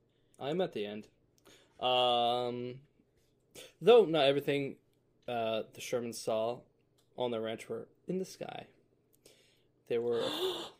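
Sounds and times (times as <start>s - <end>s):
speech: 0.4s - 1.2s, 1.8s - 2.9s, 3.6s - 8.8s, 9.9s - 10.7s
person gasping excitedly: 10.1s - 10.7s.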